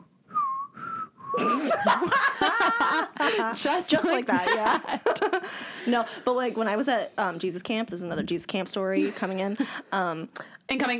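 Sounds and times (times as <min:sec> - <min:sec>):
person whistling a short three-note tune: 0:00.0 - 0:01.4
laughter: 0:01.4 - 0:05.5
people giggling: 0:01.4 - 0:05.6
speech: 0:01.4 - 0:10.9.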